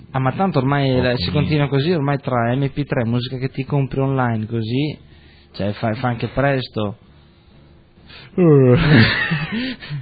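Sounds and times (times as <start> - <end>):
speech: 0.1 - 7.1, 8.1 - 10.0
soft vocal murmurs: 1.0 - 1.7
person yawning: 8.4 - 9.0.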